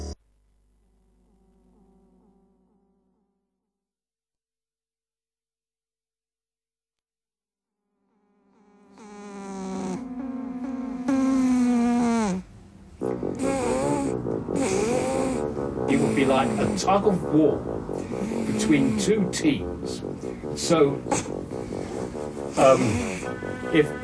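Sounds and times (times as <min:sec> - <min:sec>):
cat snoring loudly: 0:08.7 - 0:24.0
speech: 0:16.3 - 0:17.7, 0:18.6 - 0:22.0, 0:22.5 - 0:24.0.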